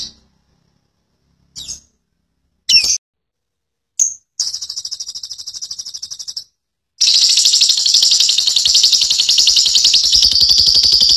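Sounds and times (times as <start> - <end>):
lovebird long chattering call: 4.0 - 11.1.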